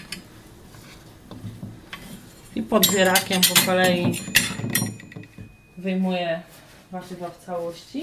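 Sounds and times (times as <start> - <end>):
low kitchen hum: 0.0 - 8.0
small ceramic plate set down beside a cooking pot: 2.0 - 5.8
speech: 2.6 - 4.4, 5.8 - 8.0.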